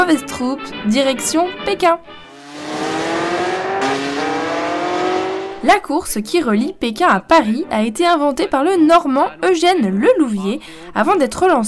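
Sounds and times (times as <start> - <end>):
speech: 0.0 - 2.6, 5.6 - 11.6
car engine revving and accelerating away: 2.2 - 5.8.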